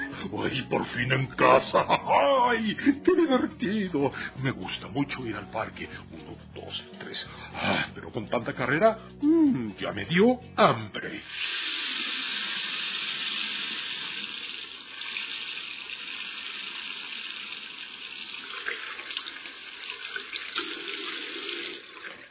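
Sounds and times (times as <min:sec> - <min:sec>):
speech: 0:00.2 - 0:11.8
laughter: 0:01.4 - 0:04.2
water running from a tap while washing hands: 0:11.3 - 0:22.2.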